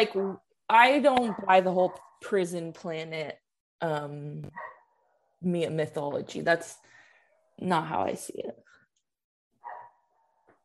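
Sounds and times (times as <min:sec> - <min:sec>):
speech: 0:00.0 - 0:04.8, 0:05.4 - 0:06.9, 0:07.6 - 0:08.6
male pet dog barking and whining: 0:04.5 - 0:04.9, 0:09.6 - 0:10.0
male pet dog yelping: 0:09.6 - 0:10.0.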